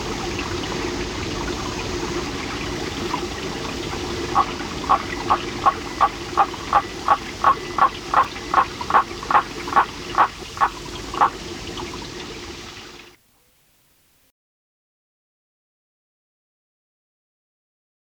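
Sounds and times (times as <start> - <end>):
constant rushing water roar: 0.0 - 13.2
Litoria nannotis waterfall frog calling in short knocking notes: 4.3 - 11.4.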